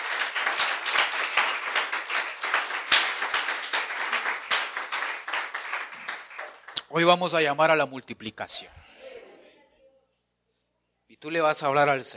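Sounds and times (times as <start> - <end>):
Christian audience applauding: 0.0 - 6.9
speech: 6.9 - 8.9, 11.2 - 12.1.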